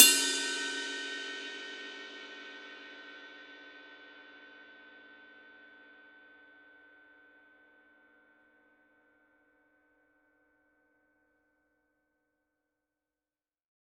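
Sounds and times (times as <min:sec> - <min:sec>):
24 medium ride cymbal bell: 0:00.0 - 0:03.1.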